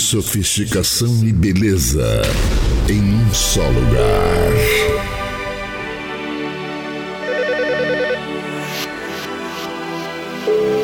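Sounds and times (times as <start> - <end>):
speech: 0.1 - 5.1
steady musical background: 0.1 - 10.8
electronic telephone ringtone trill: 7.2 - 8.3.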